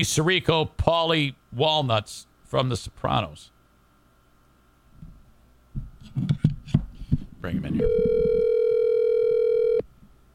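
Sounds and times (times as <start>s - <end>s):
speech: 0.0s - 3.5s, 7.4s - 8.4s
electronic ringback tone of an outgoing phone call: 7.8s - 9.8s.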